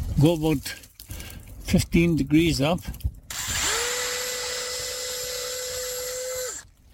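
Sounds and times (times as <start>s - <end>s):
speech: 0.2s - 0.9s, 1.7s - 3.1s
power drill boring into birch tree wood: 3.3s - 6.7s.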